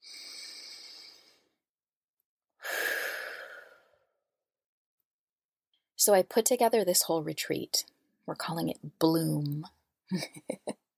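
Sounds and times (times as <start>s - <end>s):
slow deep breath: 0.0s - 1.6s, 2.6s - 4.2s
speech: 6.0s - 10.8s.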